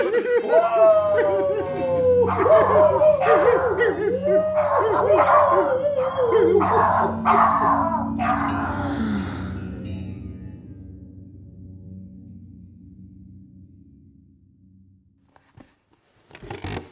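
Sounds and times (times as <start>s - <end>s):
laughter: 0.0s - 1.8s
person howling like a wolf: 0.0s - 9.6s.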